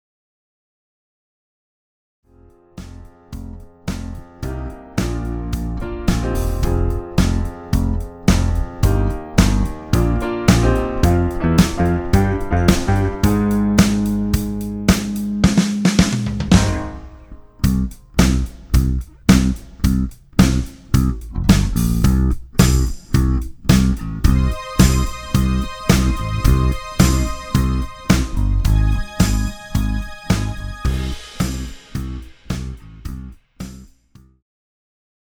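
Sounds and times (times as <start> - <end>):
guitar without vocals: 4.5 - 32.2.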